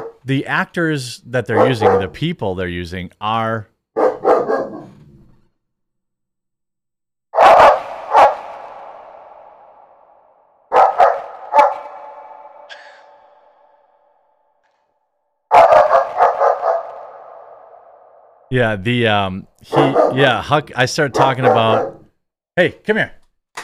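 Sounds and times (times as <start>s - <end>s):
dog barking a warning: 0.0s - 0.2s, 1.5s - 2.2s, 4.0s - 4.9s, 7.4s - 8.5s, 10.7s - 13.3s, 15.5s - 17.2s, 19.7s - 20.3s, 21.2s - 22.0s
speech: 0.2s - 3.7s, 18.5s - 22.0s, 22.6s - 23.2s.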